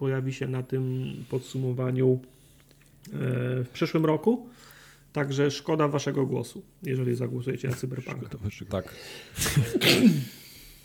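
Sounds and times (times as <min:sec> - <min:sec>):
speech: 0:00.0 - 0:02.4, 0:03.0 - 0:10.4
person sneezing: 0:09.4 - 0:10.6.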